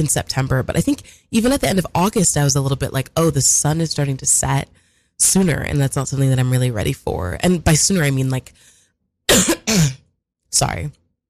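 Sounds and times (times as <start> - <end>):
speech: 0.0 - 8.7, 9.3 - 11.0
person coughing: 9.3 - 10.1.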